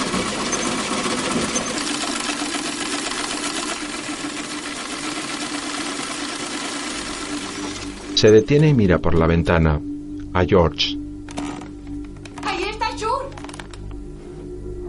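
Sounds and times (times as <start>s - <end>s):
sewing machine stitching fabric: 0.0s - 8.4s, 11.3s - 11.7s
speech: 8.2s - 11.0s.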